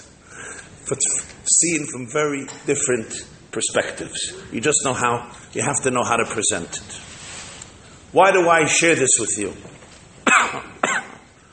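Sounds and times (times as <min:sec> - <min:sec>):
speech: 0:00.9 - 0:07.2, 0:08.1 - 0:10.7
person coughing: 0:10.2 - 0:11.4.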